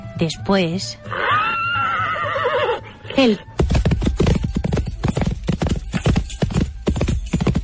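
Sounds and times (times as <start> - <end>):
speech: 0.2 - 1.4, 3.2 - 3.5
horse neighing: 1.1 - 2.9
horse hooves galloping away: 3.5 - 7.6.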